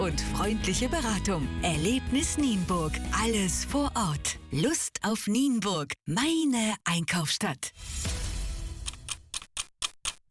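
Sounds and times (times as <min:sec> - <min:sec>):
speech: 0:00.0 - 0:08.2
clock ticking: 0:08.8 - 0:10.2.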